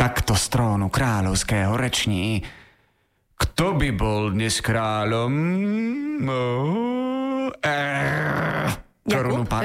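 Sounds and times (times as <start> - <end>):
speech: 0.1 - 2.6, 3.4 - 9.6
person imitating a lion's growl: 5.6 - 8.9.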